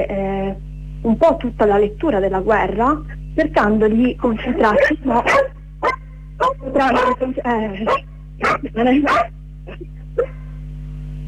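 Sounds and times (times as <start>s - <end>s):
speech: 0.0s - 5.4s, 6.7s - 10.0s
low electrical hum: 0.0s - 11.2s
dog barking: 4.6s - 10.4s.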